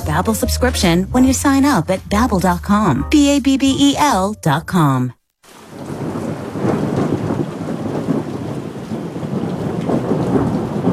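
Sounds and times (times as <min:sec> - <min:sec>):
speech: 0:00.1 - 0:05.2
heavy rain pouring: 0:05.4 - 0:10.9
deep thunder rumbling: 0:05.6 - 0:10.9.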